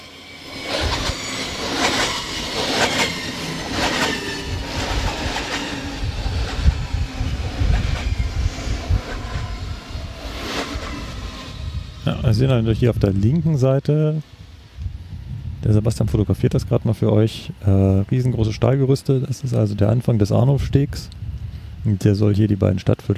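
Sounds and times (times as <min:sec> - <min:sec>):
S-Bahn commuter train wheels clattering rhythmically: 0:00.0 - 0:09.6
faint squeal of S-Bahn commuter train: 0:00.0 - 0:10.0
S-Bahn commuter train passing beside a city footbridge construction site: 0:00.0 - 0:20.7
speech: 0:12.3 - 0:14.4, 0:15.7 - 0:21.2, 0:21.8 - 0:23.1.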